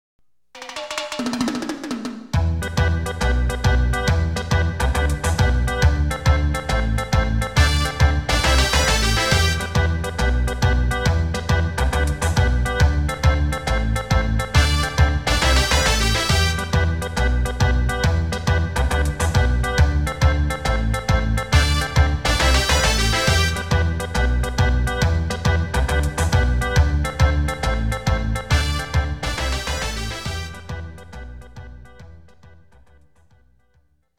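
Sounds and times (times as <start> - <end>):
ranking background music: 0.8 - 33.9.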